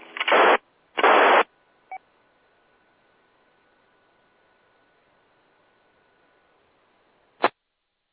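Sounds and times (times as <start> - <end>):
radio static bursts: 0.0 - 1.5.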